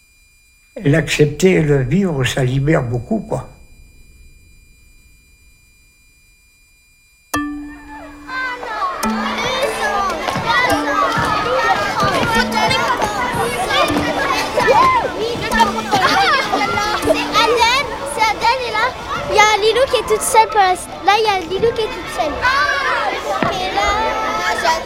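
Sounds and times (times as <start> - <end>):
steady tonal hum: 0.0 - 19.1
speech: 0.8 - 3.5
children shouting and squealing in a playground: 7.5 - 24.8.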